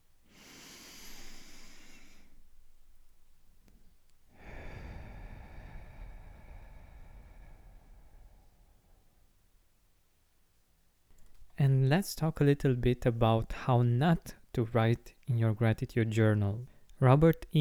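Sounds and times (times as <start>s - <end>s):
breathy exhale through the mouth: 0.3s - 2.4s, 4.3s - 9.2s
deep inhale through the nose: 0.3s - 2.4s, 4.3s - 9.1s
speech: 11.9s - 17.5s.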